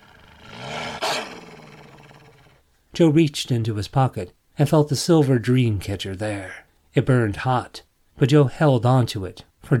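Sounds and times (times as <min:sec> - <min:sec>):
wolf snarling: 0:00.0 - 0:02.6
speech: 0:03.0 - 0:09.7.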